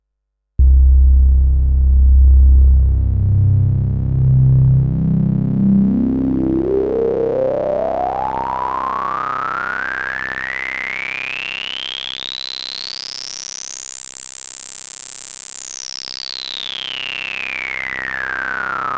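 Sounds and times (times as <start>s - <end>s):
low-pass filtered sound: 0.6s - 9.2s.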